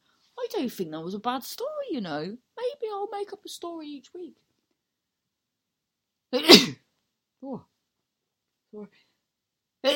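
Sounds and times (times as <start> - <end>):
speech: 0.5 - 4.4, 6.3 - 6.8, 7.4 - 7.7, 8.7 - 9.1
loud sneeze: 6.4 - 6.8.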